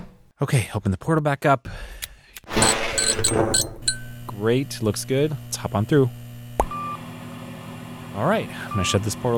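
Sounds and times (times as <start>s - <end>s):
speech: 0.4s - 2.0s, 2.6s - 3.8s, 4.4s - 6.2s, 8.2s - 9.3s
closet door hinge squeak: 2.6s - 4.2s.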